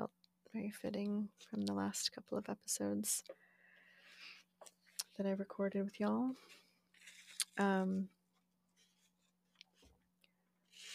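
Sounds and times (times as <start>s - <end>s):
speech: 0.5s - 3.4s, 4.6s - 6.6s, 7.6s - 8.2s
book pages rustling: 6.3s - 7.6s, 8.2s - 10.0s, 10.7s - 10.9s.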